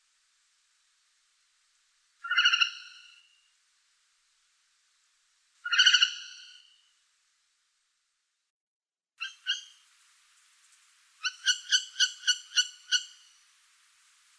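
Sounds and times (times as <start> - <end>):
Northern hawk-owl Surnia ulula screeching: 2.2 - 3.3, 5.7 - 6.7, 11.2 - 13.3.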